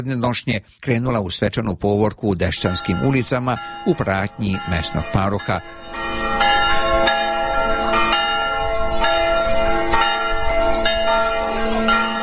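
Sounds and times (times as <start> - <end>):
speech: 0.0 - 6.6
church bell ringing: 2.5 - 12.2.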